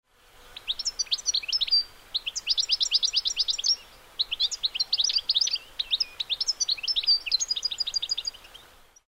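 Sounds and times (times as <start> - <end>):
goldfinch: 0.5 - 9.0.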